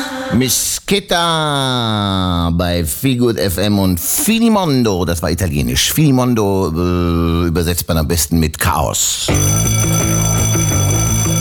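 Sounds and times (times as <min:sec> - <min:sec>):
speech: 0:00.3 - 0:10.2
alarm clock ringing: 0:09.3 - 0:11.3.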